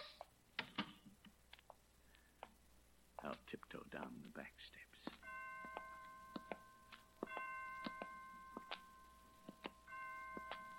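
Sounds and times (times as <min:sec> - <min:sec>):
hiss: 0:00.0 - 0:10.7
speech: 0:03.2 - 0:05.2
hospital clock chimes striking five o'clock: 0:05.2 - 0:10.7.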